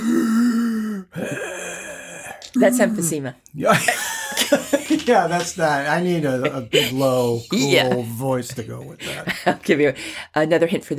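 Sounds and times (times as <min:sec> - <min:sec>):
voice imitating heavy mechanical mask-respirator breathing: 0:00.0 - 0:03.1
speech: 0:02.6 - 0:10.9.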